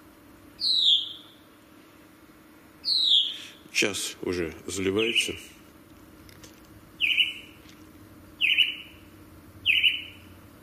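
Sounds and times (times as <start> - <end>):
low steady hum: 0.0 - 10.6
small bird singing outdoors at a dacha: 0.6 - 1.5, 2.8 - 3.7, 4.9 - 5.5, 7.0 - 7.6, 8.4 - 10.4
speech: 3.8 - 5.6.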